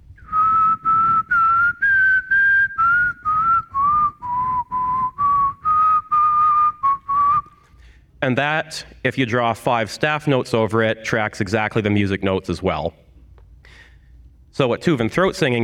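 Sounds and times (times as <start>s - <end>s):
person whistling a clear pure tone: 0.0s - 7.7s
speech: 8.2s - 13.0s, 14.6s - 15.6s.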